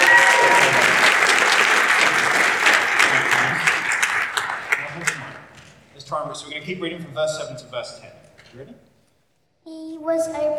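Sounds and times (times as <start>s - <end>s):
room full of people applauding: 0.0s - 5.8s
speech: 6.7s - 8.9s, 9.6s - 10.5s.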